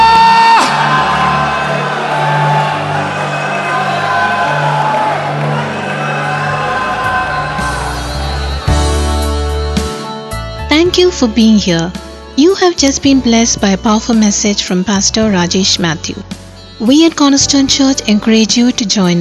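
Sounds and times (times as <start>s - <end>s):
large audience shouting and cheering: 0.0s - 10.4s
low instrumental music: 0.0s - 19.1s
speech: 11.2s - 19.1s.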